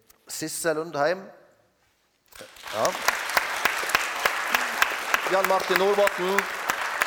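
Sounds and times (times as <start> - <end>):
speech: 0.4 - 1.4, 2.8 - 3.2, 5.3 - 6.6
audience applause: 2.4 - 7.0.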